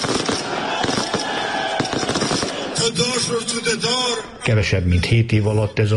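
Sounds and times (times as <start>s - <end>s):
fireworks exploding at election victory celebration: 0.0s - 3.5s
crowd roaring at election victory celebration: 0.0s - 4.4s
speech: 2.9s - 5.9s.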